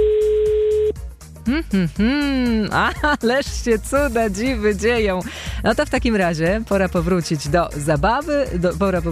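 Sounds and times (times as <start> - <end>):
telephone ringback tone of an outgoing phone call: 0.0 - 1.0
speech: 1.5 - 9.1.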